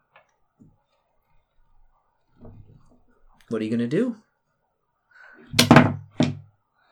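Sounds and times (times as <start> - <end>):
speech: 3.5 - 4.3
locked wooden door being tried: 5.6 - 6.4.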